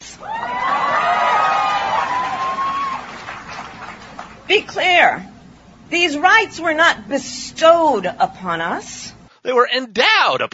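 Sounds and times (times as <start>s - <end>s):
high shouts: 0.2s - 3.3s
large crowd cheering and whooping: 0.2s - 4.5s
speech: 5.9s - 10.5s.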